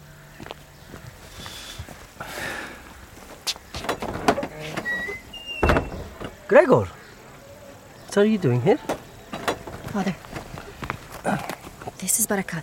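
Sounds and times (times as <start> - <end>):
gate being opened with a drawn-out scraping creak: 3.7 - 6.5
speech: 6.5 - 7.0, 8.2 - 9.0, 10.0 - 10.2, 12.0 - 12.6.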